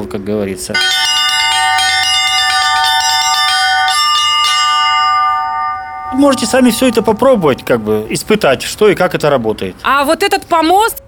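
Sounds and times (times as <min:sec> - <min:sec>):
speech: 0:00.1 - 0:01.8, 0:06.2 - 0:11.0
small belfry bells chiming: 0:00.8 - 0:08.4.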